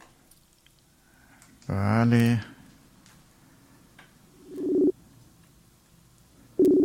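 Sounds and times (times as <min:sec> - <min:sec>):
speech: 0:01.7 - 0:02.5
long steady electronic telephone tones of a phone call being placed: 0:04.5 - 0:04.9, 0:06.6 - 0:06.8.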